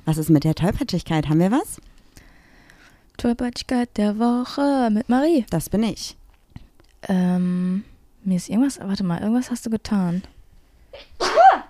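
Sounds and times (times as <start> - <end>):
speech: 0.1 - 1.8, 3.2 - 6.2, 7.0 - 11.2
sneeze: 11.0 - 11.6.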